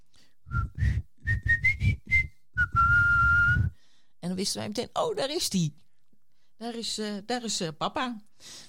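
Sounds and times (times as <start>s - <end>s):
person whistling a family tune: 0.5s - 3.8s
speech: 4.3s - 5.8s, 6.6s - 8.6s.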